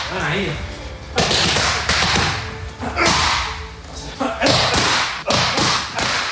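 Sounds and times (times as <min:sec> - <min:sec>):
speech: 0:00.1 - 0:00.7
punches striking hand pads: 0:01.2 - 0:03.6, 0:04.4 - 0:06.2.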